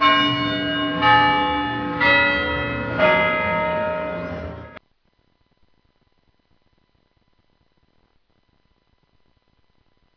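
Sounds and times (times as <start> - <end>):
clock tower bell chiming: 0.0 - 4.8.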